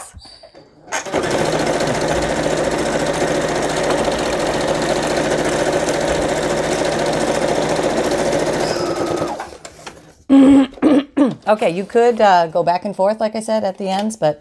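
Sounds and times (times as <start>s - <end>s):
sewing machine sewing a straight stitch on a binding: 0.9s - 10.1s
speech: 11.5s - 14.3s.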